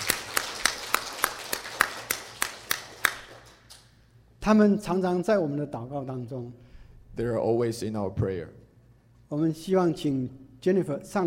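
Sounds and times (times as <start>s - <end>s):
gathering applauding warmly to welcome a woman back: 0.0s - 3.7s
speech: 4.4s - 8.6s, 9.3s - 11.2s.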